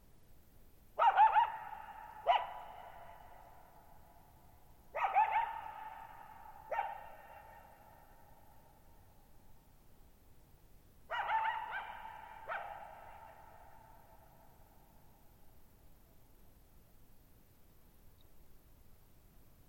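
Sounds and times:
lone coyote yelping and barking in bowl-shaped meadow: 0:01.0 - 0:03.4, 0:05.0 - 0:07.8, 0:11.1 - 0:13.8.

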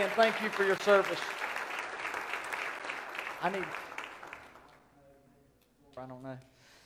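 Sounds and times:
speech: 0:00.0 - 0:01.4, 0:03.4 - 0:03.8, 0:06.0 - 0:06.5
large church audience applauding: 0:00.0 - 0:04.9.

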